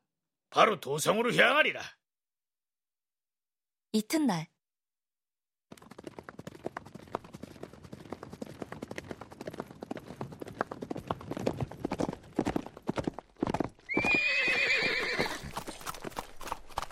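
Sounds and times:
speech: 0:00.5 - 0:02.0, 0:03.9 - 0:04.5
horse hooves clip-clopping as a rider comes through a gate: 0:05.7 - 0:16.9
horse whinnying: 0:13.8 - 0:15.6.

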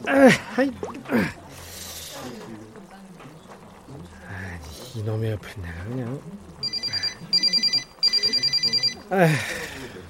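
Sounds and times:
speech: 0:00.1 - 0:01.4, 0:05.0 - 0:06.5, 0:09.1 - 0:09.7
phone ringing with incoming call, trilling high-pitched electronic ringing: 0:06.6 - 0:09.2.

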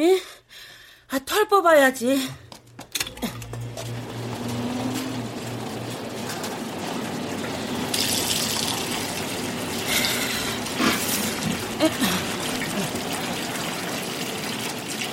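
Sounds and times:
speech: 0:01.1 - 0:02.4
low motor hum: 0:02.4 - 0:14.6
water running from a tap over a bloody knife: 0:03.5 - 0:15.1.

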